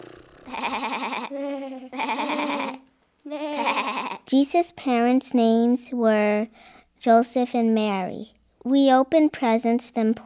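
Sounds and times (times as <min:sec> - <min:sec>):
speech: 0:00.0 - 0:02.3, 0:04.3 - 0:10.2
sheep bleating: 0:00.5 - 0:01.3, 0:02.0 - 0:02.8, 0:03.4 - 0:04.2.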